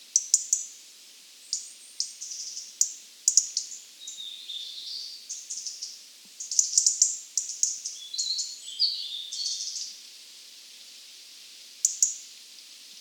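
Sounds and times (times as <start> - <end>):
European robin Erithacus rubecula song of twittering ticking phrases and sliding whistles: 1.4 - 10.0.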